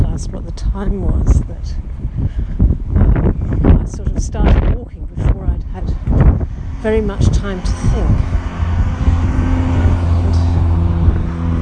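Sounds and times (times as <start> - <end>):
speech: 0.2 - 2.6, 3.9 - 6.2, 6.8 - 8.6
loud car engine rumbling as the car drives past: 5.9 - 11.5.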